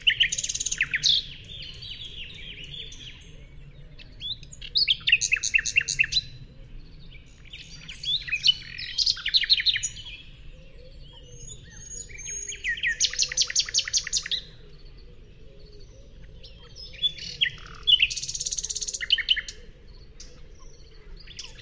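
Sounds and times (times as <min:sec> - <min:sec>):
common nightingale Luscinia megarhynchos singing: 0:00.0 - 0:21.6.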